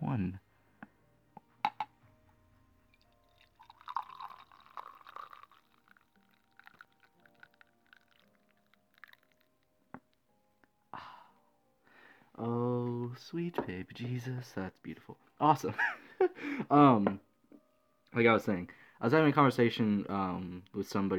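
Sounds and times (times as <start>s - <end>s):
speech: 0.1s - 0.5s, 13.3s - 17.3s, 18.1s - 21.1s
cup clinking and tapping: 1.6s - 1.9s, 3.0s - 9.4s
coffee pouring into a cup: 2.8s - 9.7s.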